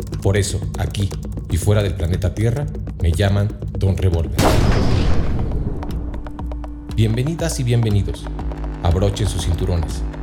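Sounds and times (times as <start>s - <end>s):
speech: 0.0s - 5.0s, 7.0s - 10.2s
gunshot sound effect with rumbling echo: 4.4s - 6.4s
sharp quieter cracks: 4.4s - 6.6s.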